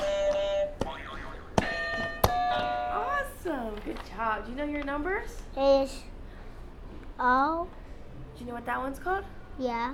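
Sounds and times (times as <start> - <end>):
toy electronic buzzer: 0.0 - 2.9
speech: 3.9 - 6.1, 7.2 - 7.8, 8.4 - 9.9.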